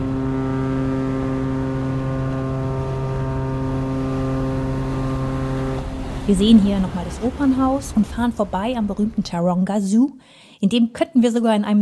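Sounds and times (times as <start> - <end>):
wind and water rushing: 0.0 - 9.4
boat engine droning while travelling across Sydney Harbour: 0.0 - 9.6
speech: 6.3 - 11.8.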